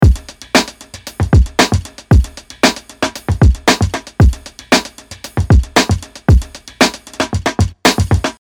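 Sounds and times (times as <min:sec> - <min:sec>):
breakbeat drums: 0:00.0 - 0:08.3.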